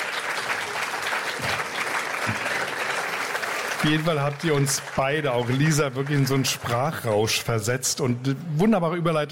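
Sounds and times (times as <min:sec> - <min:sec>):
audience applause: 0:00.0 - 0:07.7
speech: 0:03.8 - 0:09.2.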